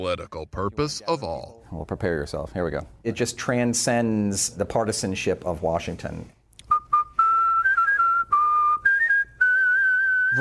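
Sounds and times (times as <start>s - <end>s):
speech: 0.0s - 6.4s
person whistling a birthday song melody: 6.7s - 10.3s.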